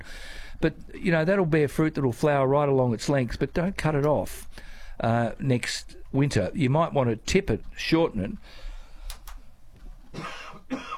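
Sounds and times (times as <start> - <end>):
speech: 0.0 - 8.7
person coughing: 10.1 - 10.9
throat clearing: 10.1 - 10.9.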